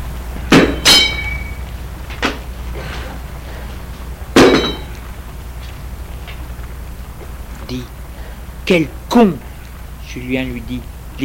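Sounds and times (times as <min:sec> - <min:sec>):
iron bar dropped clanging against the ground: 0:00.5 - 0:01.6, 0:04.4 - 0:05.0
speech: 0:07.7 - 0:08.0, 0:08.7 - 0:09.4, 0:10.1 - 0:11.2.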